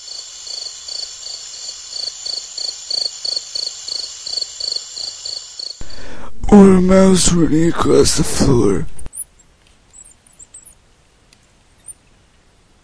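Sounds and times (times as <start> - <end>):
cricket chirping: 0.0 - 6.2, 9.0 - 10.8, 11.8 - 12.0
speech: 6.5 - 9.0.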